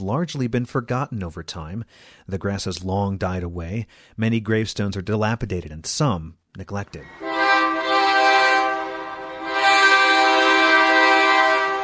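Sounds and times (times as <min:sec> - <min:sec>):
speech: 0:00.0 - 0:07.4
freight train horn blaring: 0:07.0 - 0:11.8.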